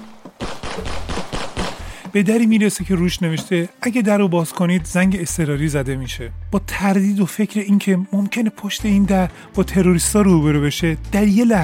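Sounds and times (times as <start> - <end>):
rapid burst of automatic weapon gunfire: 0.4 - 2.0
speech: 2.1 - 11.6.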